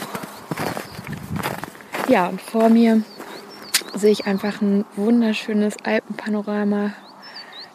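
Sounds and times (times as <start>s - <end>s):
footsteps crunching through deep snow: 0.0s - 5.1s
faint high bird calls in a snowy Alpine mountain landscape: 0.0s - 7.7s
soft steady outdoor hush in a snowy Alpine mountain landscape: 0.0s - 7.7s
speech: 2.1s - 3.1s, 4.0s - 7.0s.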